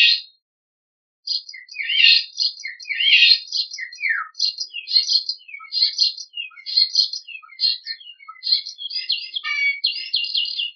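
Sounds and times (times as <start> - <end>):
starling singing and mimicking golden oriole, hen and heron calls: 0.0 - 0.3, 1.3 - 10.7.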